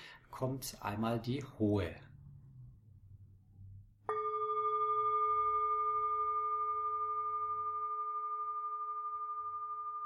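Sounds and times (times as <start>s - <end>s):
speech: 0.3s - 2.1s
faint low rumble: 0.8s - 10.0s
small high-pitched singing bowl struck and ringing: 4.1s - 10.0s.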